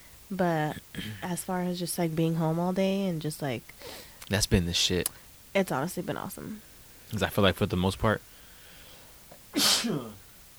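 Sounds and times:
speech: 0.3 - 8.3, 9.5 - 10.2
sneeze: 9.5 - 10.2.

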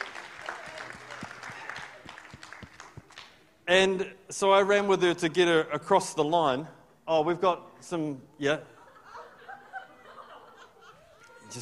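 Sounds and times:
audience applause: 0.0 - 3.4
speech: 3.7 - 8.8
laughter: 8.6 - 11.6.

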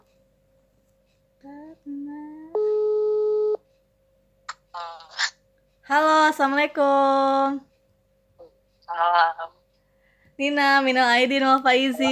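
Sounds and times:
outgoing phone call ringback tone: 2.6 - 3.6
speech: 5.9 - 7.7, 10.4 - 12.1.

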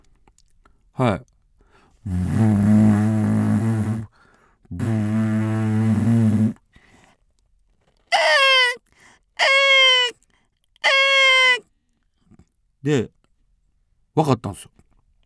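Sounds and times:
speech: 1.0 - 1.3, 2.0 - 3.0, 12.9 - 13.1, 14.2 - 14.8
voice imitating a ship's horn with long low droning blasts: 2.0 - 4.1, 4.7 - 6.6, 8.1 - 8.8
voice mimicking black-tailed gulls with short high wavering cries: 8.1 - 8.8, 9.4 - 10.2, 10.8 - 11.6.

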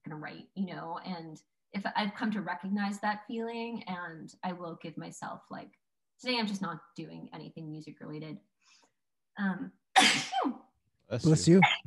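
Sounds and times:
speech: 0.2 - 8.8, 9.4 - 11.8
person sneezing: 10.0 - 10.5.

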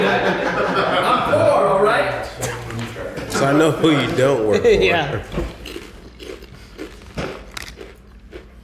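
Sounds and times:
laughter: 0.0 - 1.8
speech: 3.4 - 5.6
person chewing potato chips: 5.5 - 8.6.

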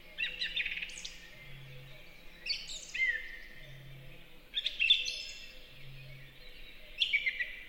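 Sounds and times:
song thrush singing in a forest in spring: 0.0 - 7.6
faint low droning note: 1.3 - 2.4, 3.4 - 4.4, 5.5 - 6.6.

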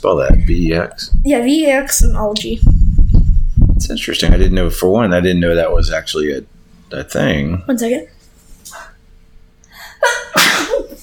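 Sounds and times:
speech: 0.0 - 2.8, 3.8 - 8.9
person sneezing: 10.4 - 10.9.

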